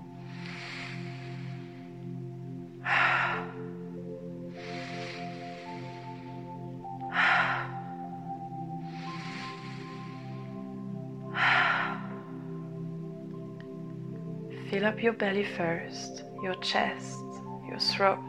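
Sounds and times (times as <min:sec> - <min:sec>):
guided breathing in through the nose and out through the mouth: 0:00.0 - 0:14.6
steady low sustained musical drone: 0:00.0 - 0:18.2
speech: 0:14.8 - 0:18.2.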